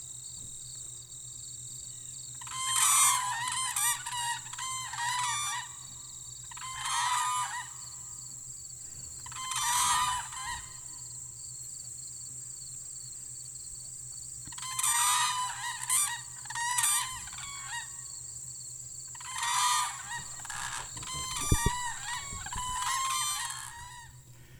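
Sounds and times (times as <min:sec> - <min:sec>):
two whooping cranes bugling calls: 0:02.4 - 0:05.9, 0:06.5 - 0:08.1, 0:08.9 - 0:11.1, 0:14.5 - 0:18.1, 0:19.1 - 0:24.3.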